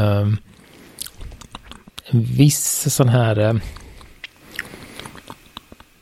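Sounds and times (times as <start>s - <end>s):
speech: 0.0s - 0.6s, 2.1s - 3.8s
low noise: 0.0s - 6.0s
person chewing and biting marine-tasting food with seaweed and algae flavour: 0.5s - 2.0s, 3.6s - 6.0s.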